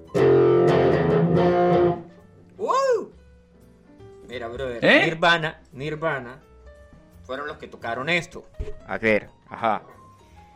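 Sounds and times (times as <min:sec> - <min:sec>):
distorted electric guitar riff played live: 0:00.0 - 0:02.1
speech: 0:04.6 - 0:06.5, 0:07.3 - 0:10.0.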